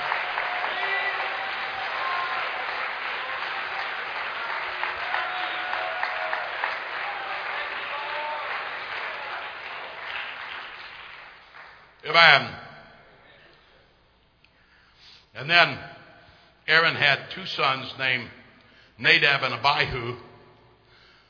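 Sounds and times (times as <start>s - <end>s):
audience clapping hands in worship: 0.0s - 12.3s
speech: 12.1s - 12.6s, 15.4s - 15.9s, 16.7s - 18.4s, 19.0s - 20.2s.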